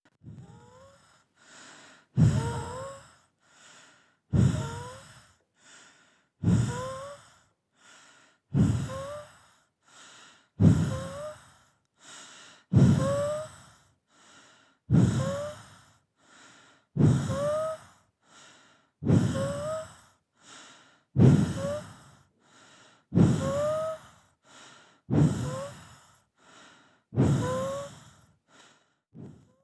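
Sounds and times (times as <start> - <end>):
noisy breathing: 0.3 - 29.6.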